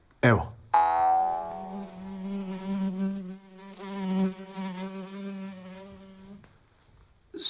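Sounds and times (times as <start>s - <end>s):
housefly buzzing around a person's face: 0.8s - 6.4s.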